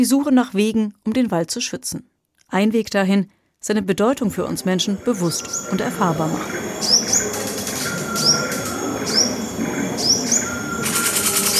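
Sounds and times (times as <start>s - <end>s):
speech: 0.0s - 7.4s
birds twittering in short bright chirps: 4.6s - 11.5s.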